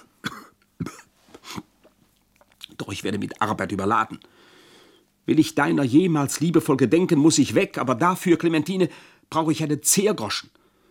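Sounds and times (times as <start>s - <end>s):
person coughing hollowly: 0.0s - 1.7s
speech: 2.8s - 4.5s, 5.3s - 10.6s.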